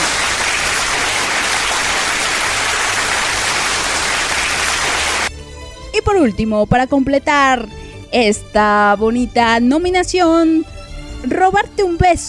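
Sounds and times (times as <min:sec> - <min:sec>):
crowd applause: 0:00.0 - 0:05.3
speech: 0:06.2 - 0:12.2.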